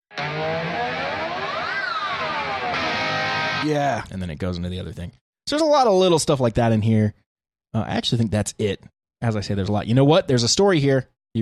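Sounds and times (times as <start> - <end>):
distorted electric guitar slide over a sustained chord: 0.1 - 3.7
speech: 3.6 - 11.3.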